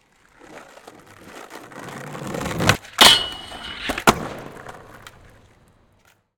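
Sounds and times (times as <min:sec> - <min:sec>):
skateboard grinding on metal rail: 0:00.4 - 0:05.3
skateboard jump landing: 0:00.6 - 0:06.0.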